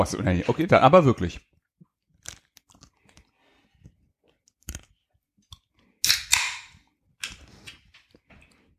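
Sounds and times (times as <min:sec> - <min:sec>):
speech: 0:00.0 - 0:01.5
crunching and chewing of a caramel ice cream bar: 0:02.1 - 0:03.4, 0:04.4 - 0:05.0.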